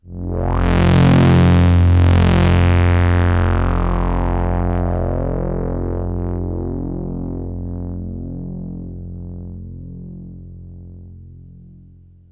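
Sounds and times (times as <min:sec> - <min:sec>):
F1 sweep synth: 0:00.0 - 0:10.2.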